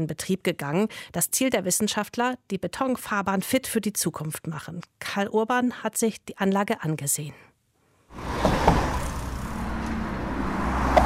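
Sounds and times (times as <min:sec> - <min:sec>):
speech: 0:00.0 - 0:07.5
cars driving on a concrete motorway surface: 0:08.1 - 0:11.0.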